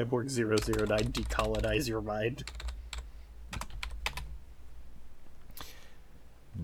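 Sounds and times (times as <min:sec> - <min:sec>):
speech: 0:00.0 - 0:02.6
typing on a computer keyboard: 0:00.6 - 0:01.8, 0:02.4 - 0:04.3.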